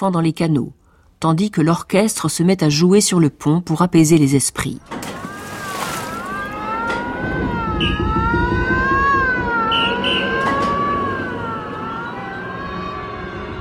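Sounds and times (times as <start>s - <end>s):
speech: 0.0s - 5.3s
sinking ship sirens wailing at night: 4.9s - 13.5s
low rumble: 6.5s - 9.7s.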